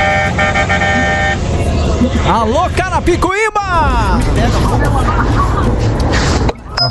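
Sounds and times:
car horn honking: 0.0 - 1.5
road and engine noise: 0.0 - 6.8
speech: 2.3 - 6.8
laughter: 4.1 - 6.8.

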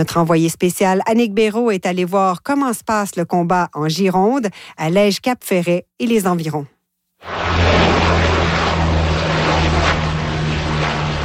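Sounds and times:
speech: 0.0 - 7.4
Canadair water-bomber propeller aircraft fighting wildfires in Gironde flying overhead: 7.2 - 11.2.

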